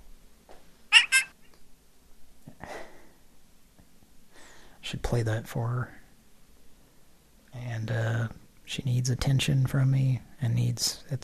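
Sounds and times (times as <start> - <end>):
house cat meowing: 0.9 - 1.3
speech: 4.9 - 6.0, 7.8 - 11.2.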